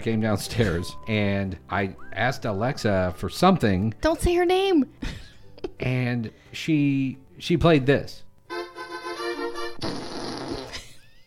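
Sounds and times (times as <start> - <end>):
speech: 0.0 - 5.2, 5.8 - 8.2
fart sound effect played by a smart speaker: 9.7 - 11.0.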